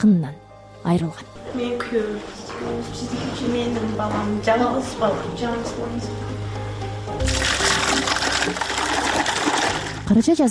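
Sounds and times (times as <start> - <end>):
speech: 0.0 - 6.4, 10.1 - 10.4
water pouring from buckets in a small town: 7.2 - 10.1.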